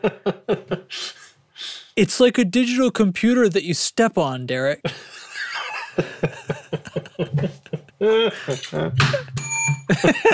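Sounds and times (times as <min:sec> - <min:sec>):
people laughing: 0:00.0 - 0:01.1, 0:04.9 - 0:10.3
people chatting: 0:00.0 - 0:01.2, 0:02.0 - 0:10.3
speech: 0:00.0 - 0:01.2, 0:02.0 - 0:05.2, 0:06.0 - 0:10.3
bell ringing: 0:09.4 - 0:10.0.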